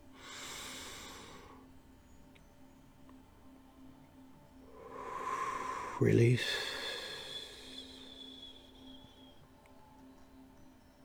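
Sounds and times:
deep breath in through the nose in a guided breathing exercise: 0.1 - 1.7, 4.8 - 8.9
speech: 6.0 - 6.7.

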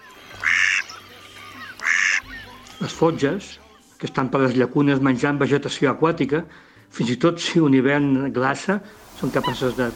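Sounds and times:
mallard ducks quacking in the lagoons of the delta: 0.3 - 2.7, 9.2 - 9.9
speech: 2.8 - 9.9.

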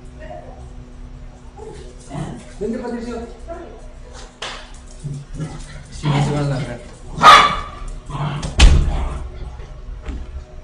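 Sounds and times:
noise: 0.0 - 10.6
speech: 2.6 - 3.6
dogs barking excitedly: 5.0 - 9.3
heavy thud: 8.6 - 9.1.

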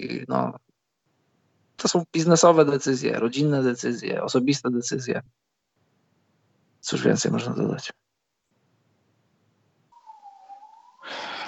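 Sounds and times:
speech: 0.0 - 0.6, 1.8 - 5.5, 6.8 - 8.0
faint fire engine siren wailing: 10.0 - 11.4.

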